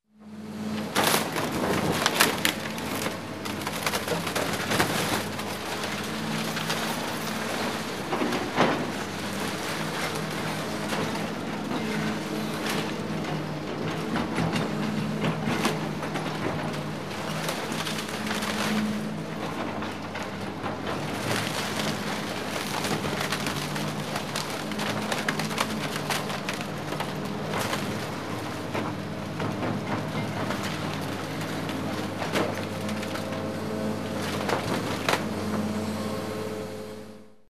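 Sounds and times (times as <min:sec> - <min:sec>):
bulldozer driving through forest: 0:00.2 - 0:37.4
trees cracking: 0:00.7 - 0:35.7.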